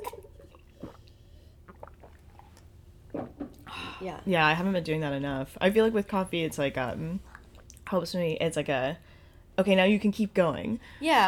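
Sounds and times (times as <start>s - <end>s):
sipping water from a glass: 0.0s - 3.7s
soft slurping gulps of water: 0.0s - 3.7s, 7.0s - 7.8s
speech: 4.0s - 7.3s, 7.9s - 11.2s.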